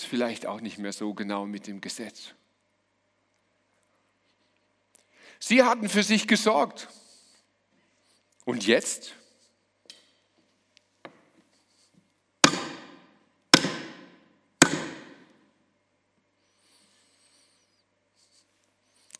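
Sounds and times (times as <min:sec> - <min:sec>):
speech: 0:00.1 - 0:02.4, 0:05.4 - 0:07.0, 0:08.5 - 0:09.2
hammer blows driving a nail: 0:12.4 - 0:15.4.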